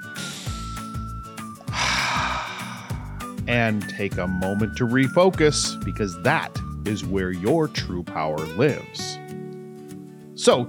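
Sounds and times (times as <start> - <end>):
rhythmic music: 0.0 - 9.1
deep airy inhale: 1.7 - 3.5
speech: 3.5 - 9.2, 10.4 - 10.6.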